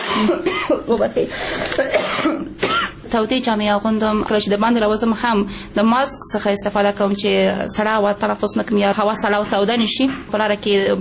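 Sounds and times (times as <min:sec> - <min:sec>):
ill adult coughing in cold weather: 0:00.0 - 0:03.0
speech: 0:00.2 - 0:10.9.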